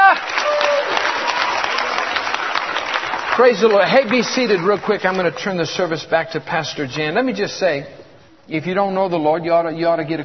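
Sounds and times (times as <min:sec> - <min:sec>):
church congregation clapping in praise during a worship service: 0:00.0 - 0:05.7
speech: 0:03.4 - 0:10.2.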